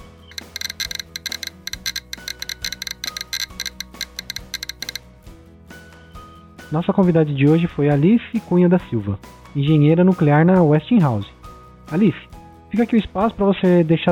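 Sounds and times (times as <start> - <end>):
radiation detector crackling with rapid irregular clicks: 0.3 - 5.0
speech: 6.7 - 14.1.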